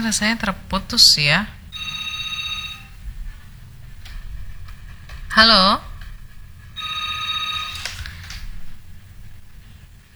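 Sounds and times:
speech: 0.0 - 1.6, 5.4 - 5.9
low steady hum: 0.0 - 10.1
telephone ringing for an incoming call: 1.6 - 4.6, 5.3 - 9.5.

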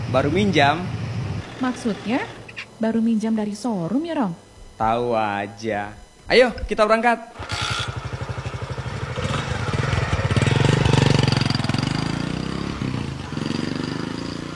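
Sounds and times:
motorcycle engine idling and revving: 0.0 - 4.1, 7.4 - 14.5
speech: 0.1 - 1.0, 1.6 - 7.5.

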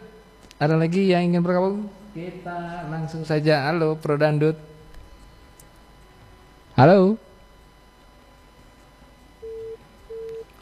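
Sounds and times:
speech: 0.6 - 4.7, 6.8 - 7.3
telephone beeps after a phone-in call is cut off: 9.4 - 10.5.

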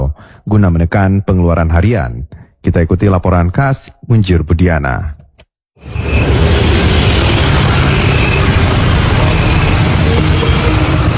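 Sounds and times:
speech: 0.4 - 5.2
vehicle engines idling at a gas station: 6.8 - 11.1.

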